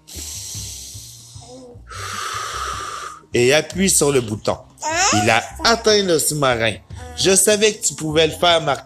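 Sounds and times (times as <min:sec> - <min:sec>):
long deep breath drawn in: 0:00.0 - 0:03.3
soft low music: 0:00.0 - 0:08.8
speech: 0:01.5 - 0:02.2, 0:03.3 - 0:08.8.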